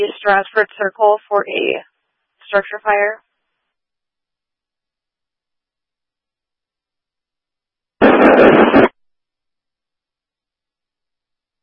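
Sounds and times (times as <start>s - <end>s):
speech: 0.0s - 1.9s, 2.5s - 3.3s
harsh radio static burst from transmitter keying up: 8.0s - 8.9s.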